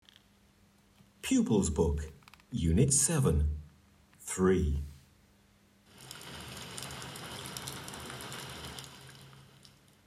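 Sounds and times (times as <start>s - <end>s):
speech: 1.3s - 3.6s, 4.4s - 4.9s
steady rain: 5.9s - 10.0s.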